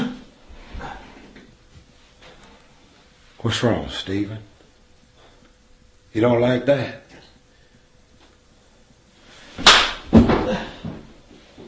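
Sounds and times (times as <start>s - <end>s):
speech: 3.4s - 4.5s, 6.1s - 7.0s
man being slapped hard: 9.6s - 10.6s.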